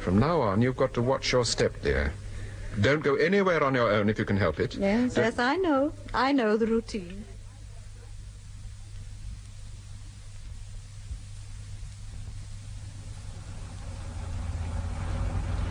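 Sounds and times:
speech: 0:00.0 - 0:07.3
car engine rumbling in heavy traffic: 0:11.2 - 0:15.6
road noise: 0:12.7 - 0:15.6.

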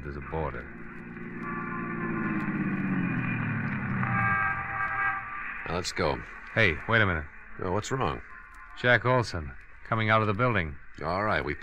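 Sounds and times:
speech: 0:00.0 - 0:00.8, 0:05.7 - 0:11.6
police squad car engine droning: 0:00.0 - 0:08.3.

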